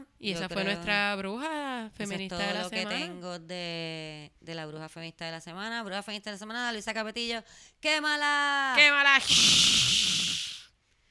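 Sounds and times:
speech: 0:00.2 - 0:10.4
person imitating fire with a breathy hiss: 0:09.1 - 0:10.7.

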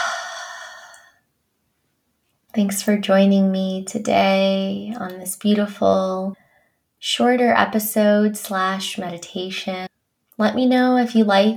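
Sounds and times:
long breathy exhale during a guided meditation: 0:00.0 - 0:01.1
speech: 0:02.6 - 0:06.4, 0:07.0 - 0:11.5.

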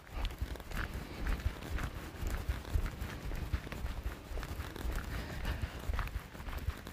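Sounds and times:
light footsteps on the balls of the feet on a hard surface: 0:00.0 - 0:06.9
rustling: 0:00.0 - 0:06.9.

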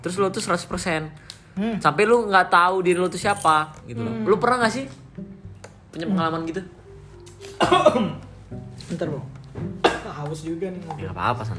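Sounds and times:
speech: 0:00.0 - 0:05.3, 0:06.0 - 0:06.8, 0:07.4 - 0:11.5
raspy cough: 0:07.6 - 0:08.3, 0:09.8 - 0:10.2.

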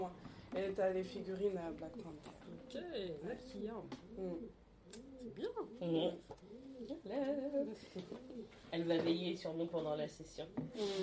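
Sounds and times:
speech: 0:00.0 - 0:11.0
pigeon cooing: 0:02.0 - 0:08.7, 0:10.6 - 0:11.0.

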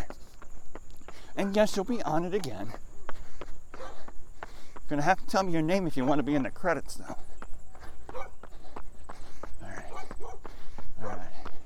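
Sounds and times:
speech: 0:01.4 - 0:02.9, 0:04.9 - 0:07.3
dog barking: 0:03.8 - 0:04.1, 0:08.1 - 0:08.4, 0:09.8 - 0:11.4.

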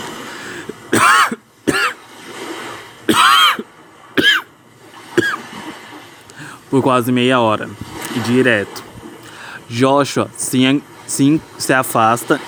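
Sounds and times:
person with an itchy throat coughing harshly: 0:00.4 - 0:02.0, 0:03.1 - 0:04.5, 0:05.2 - 0:05.5
throaty clearing sounds: 0:00.5 - 0:02.0, 0:03.1 - 0:03.6, 0:04.2 - 0:04.5, 0:05.2 - 0:05.5
speech: 0:06.7 - 0:08.9, 0:09.7 - 0:12.4.

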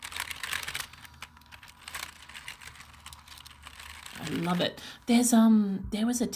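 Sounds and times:
computer keyboard keys being pressed: 0:00.0 - 0:04.7
speech: 0:04.2 - 0:06.3.

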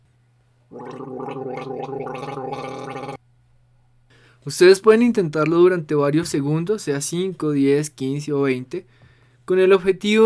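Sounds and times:
speech: 0:00.7 - 0:03.0, 0:04.4 - 0:10.2
person gargling water: 0:00.7 - 0:03.2.

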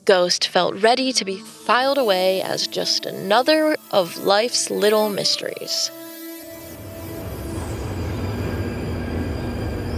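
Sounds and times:
speech: 0:00.1 - 0:06.0
thin metallic train wheel squeals: 0:05.9 - 0:09.9
train rumbling along railway tracks: 0:06.7 - 0:09.9.

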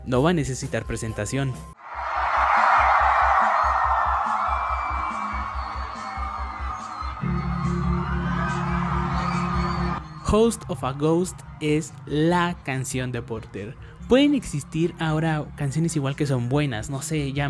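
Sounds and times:
speech: 0:00.0 - 0:01.8, 0:10.3 - 0:17.4
large concert crowd roaring and screaming: 0:01.8 - 0:12.9.

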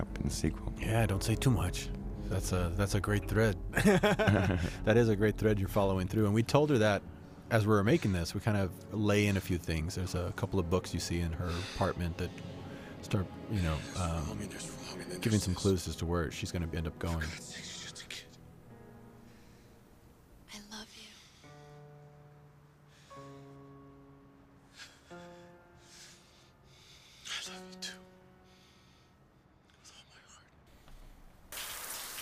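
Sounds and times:
sustained musical notes: 0:00.0 - 0:19.5
speech: 0:00.3 - 0:18.2
laughter: 0:03.8 - 0:04.9
shower water running: 0:31.5 - 0:32.2.

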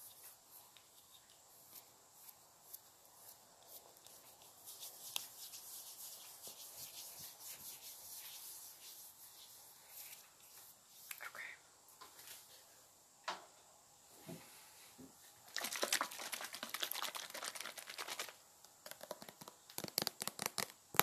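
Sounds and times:
rose-scented cream for sensitive skin rubbed into facial skin: 0:00.0 - 0:11.1, 0:15.6 - 0:20.8.

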